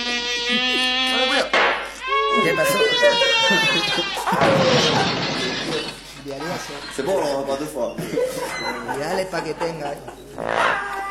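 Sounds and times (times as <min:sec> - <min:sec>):
mosquito buzzing: 0:00.0 - 0:04.3
laughter: 0:00.3 - 0:01.5, 0:02.2 - 0:11.0
speech: 0:02.4 - 0:05.4, 0:06.3 - 0:10.9.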